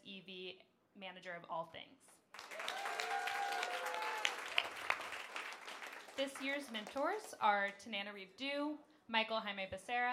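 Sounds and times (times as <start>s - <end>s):
speech: 0.3s - 3.9s, 6.2s - 10.1s
crowd applauding: 2.3s - 7.4s
crowd whooping and cheering: 2.4s - 6.1s.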